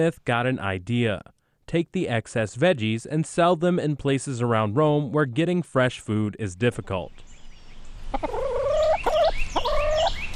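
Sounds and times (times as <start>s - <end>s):
speech: 0.0s - 7.3s, 8.1s - 8.4s
continuous farmyard background: 0.0s - 10.3s
chickens clucking on a shelter farm: 8.1s - 10.3s.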